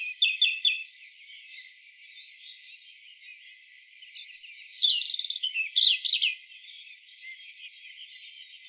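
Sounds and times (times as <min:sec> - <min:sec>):
European robin Erithacus rubecula singing: 0:00.0 - 0:02.6, 0:04.1 - 0:06.5.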